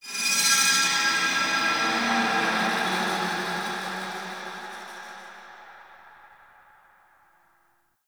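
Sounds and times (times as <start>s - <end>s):
ambient texture: 0.8s - 6.7s.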